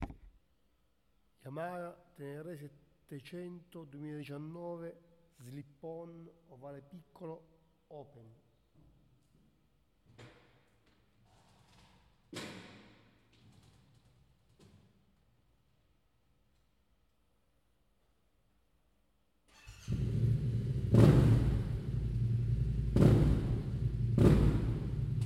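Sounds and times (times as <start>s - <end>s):
Yamaha Tenere 700 motorcycle: 19.5s - 25.2s.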